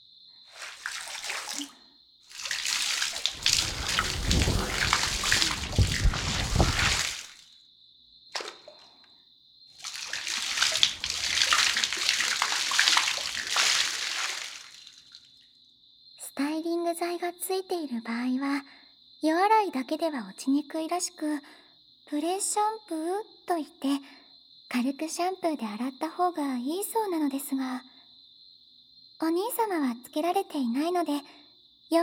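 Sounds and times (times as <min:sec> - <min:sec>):
running water pouring and splashing: 0:00.5 - 0:01.7, 0:02.3 - 0:07.4, 0:09.8 - 0:15.2
speech: 0:17.2 - 0:27.9, 0:29.2 - 0:32.0.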